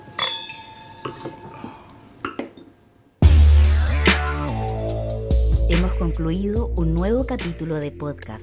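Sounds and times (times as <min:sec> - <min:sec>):
wine glasses clinking in a toast: 0:00.2 - 0:01.3
loud music: 0:03.2 - 0:08.4
speech: 0:05.7 - 0:08.4.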